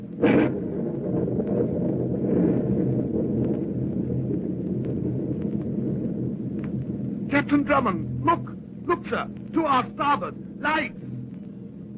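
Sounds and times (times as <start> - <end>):
rumbling thunder: 0.0 - 7.4
storm at sea: 0.0 - 11.9
speech: 7.5 - 11.0.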